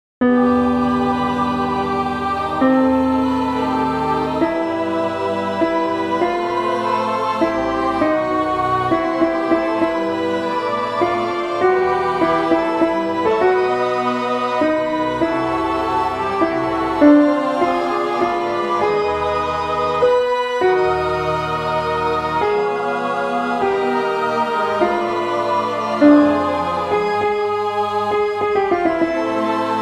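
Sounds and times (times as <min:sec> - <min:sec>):
old piano: 0:00.2 - 0:29.8.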